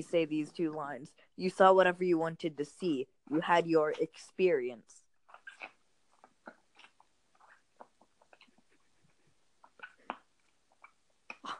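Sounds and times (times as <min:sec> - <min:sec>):
speech: 0:00.0 - 0:05.0
wet chewing of soft sticky candies: 0:05.1 - 0:11.5.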